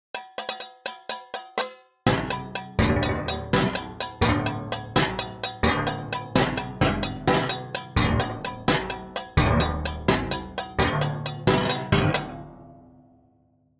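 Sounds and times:
dry metallic pitch example: 2.1s - 12.5s.

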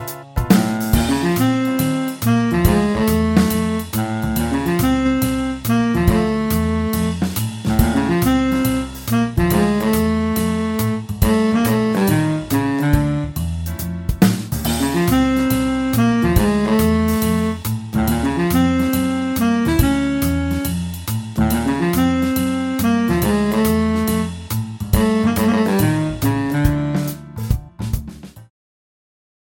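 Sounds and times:
baritone saxophone: 0.0s - 14.0s, 14.6s - 27.6s.

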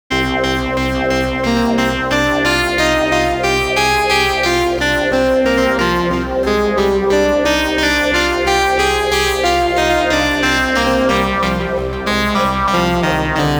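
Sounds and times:
saw synth sequence: 0.1s - 13.5s
choir sound in a sequence: 2.3s - 13.5s.

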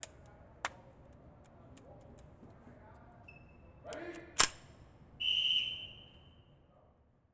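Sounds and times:
rifle being loaded: 4.0s - 4.8s.

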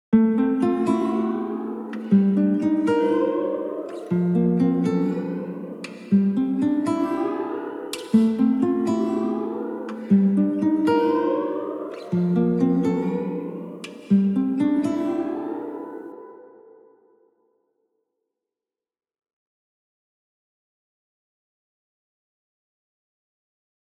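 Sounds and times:
acoustic guitar with delay shimmer: 0.2s - 16.4s.

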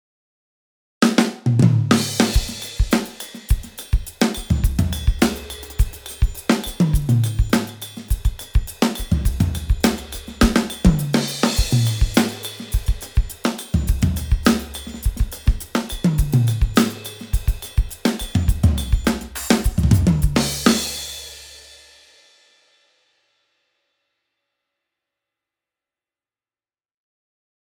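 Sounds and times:
studio drums: 1.0s - 22.8s.

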